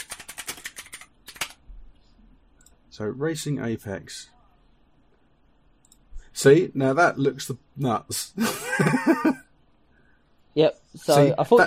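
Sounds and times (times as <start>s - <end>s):
typing on a computer keyboard: 0.0s - 1.6s
speech: 3.0s - 4.4s, 6.4s - 9.4s, 10.6s - 11.6s.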